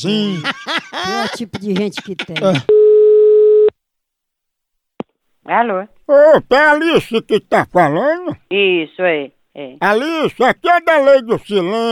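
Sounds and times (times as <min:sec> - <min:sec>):
speech: 0:00.0 - 0:02.7, 0:05.5 - 0:11.8
telephone call tone: 0:02.7 - 0:03.7.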